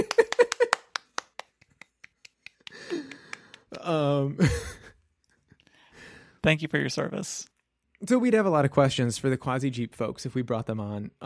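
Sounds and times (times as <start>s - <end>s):
sharp hand claps: 0.0s - 3.8s
wordless vocal cheer and sigh: 0.1s - 4.9s
speech: 3.9s - 4.8s, 6.4s - 11.2s.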